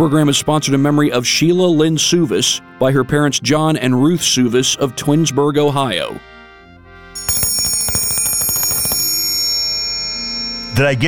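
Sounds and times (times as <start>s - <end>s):
speech: 0.0s - 6.3s, 10.8s - 11.0s
dinner bell ringing: 7.2s - 11.0s.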